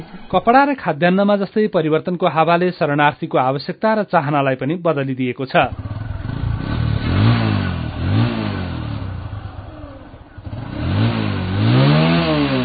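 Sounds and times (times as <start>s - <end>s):
speech: 0.0s - 5.9s
motorcycle engine revving at a motorcycle repair workshop: 5.6s - 12.6s.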